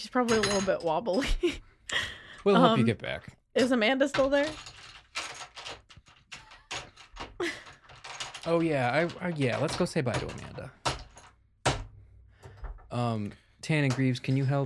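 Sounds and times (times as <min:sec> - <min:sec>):
speech: 0:00.0 - 0:04.8, 0:08.4 - 0:10.8, 0:12.9 - 0:14.6
chair pushed in with a loose clattering rattle: 0:04.2 - 0:11.4.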